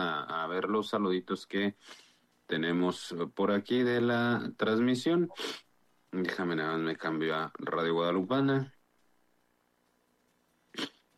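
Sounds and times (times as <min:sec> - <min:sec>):
speech: 0:00.5 - 0:08.8
person sneezing: 0:05.3 - 0:05.6, 0:10.7 - 0:11.0.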